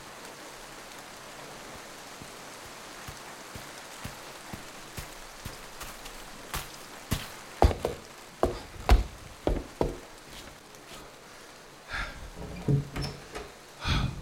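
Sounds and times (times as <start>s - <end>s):
steady rain: 0.0s - 14.2s
heavier raindrops tapping a nearby surface: 0.4s - 11.1s.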